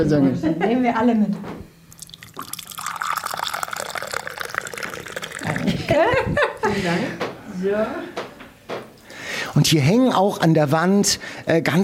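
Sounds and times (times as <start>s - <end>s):
speech: 0.0s - 1.7s, 5.9s - 8.2s, 9.6s - 11.8s
coffee pouring into a cup: 1.9s - 6.0s
laughter: 5.4s - 7.2s.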